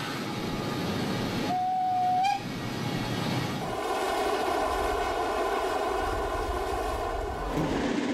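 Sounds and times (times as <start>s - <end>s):
steam train rumbling along a flat line across a raised bog: 0.0s - 8.1s.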